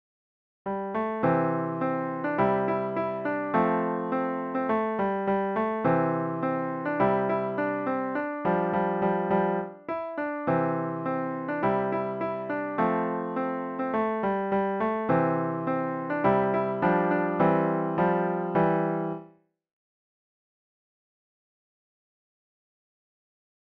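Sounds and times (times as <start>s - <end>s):
easy piano piece: 0.7s - 19.4s.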